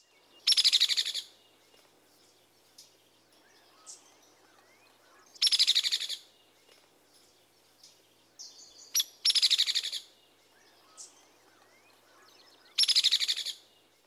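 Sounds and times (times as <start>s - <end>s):
soft outdoor ambience: 0.0s - 14.0s
hairy woodpecker rattle call: 0.5s - 1.3s, 5.4s - 6.2s, 9.0s - 10.0s, 12.8s - 13.6s.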